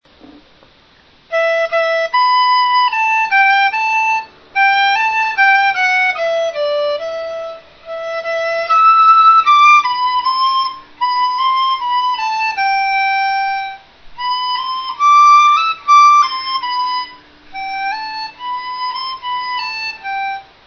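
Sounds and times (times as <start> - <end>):
dizi flute: 1.2 - 20.6.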